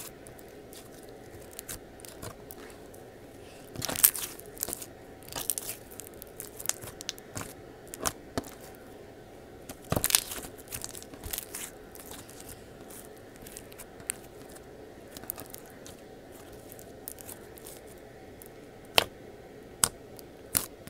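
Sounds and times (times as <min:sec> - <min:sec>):
slime being squished and handled: 0:00.0 - 0:02.9, 0:03.7 - 0:08.8, 0:09.7 - 0:19.1, 0:19.8 - 0:20.8
soft steady hum: 0:00.0 - 0:20.8.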